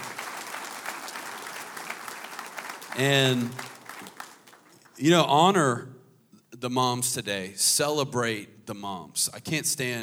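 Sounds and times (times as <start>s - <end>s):
audience applause at a gathering: 0.0s - 5.0s
speech: 3.0s - 3.7s, 5.0s - 6.0s, 6.6s - 10.0s.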